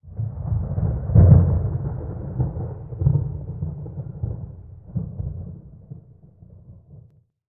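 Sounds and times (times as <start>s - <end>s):
small pre-storm ambience: 0.0s - 7.1s.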